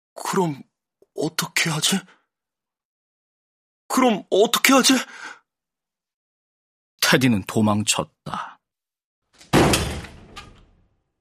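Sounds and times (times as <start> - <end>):
speech: 0.2 - 2.2, 3.9 - 5.4, 7.1 - 8.6
bathroom door slamming shut: 9.4 - 10.9.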